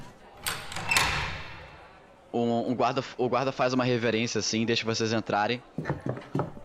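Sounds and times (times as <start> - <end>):
door opening with sharp mechanical clicks and knocks: 0.4 - 1.7
speech: 2.7 - 6.5.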